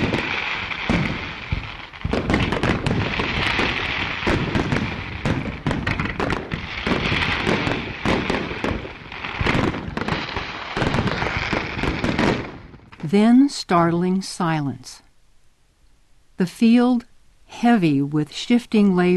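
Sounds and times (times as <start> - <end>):
fireworks aerial salutes launched from mortars exploding: 0.0 - 13.9
speech: 13.1 - 15.0, 16.4 - 19.1.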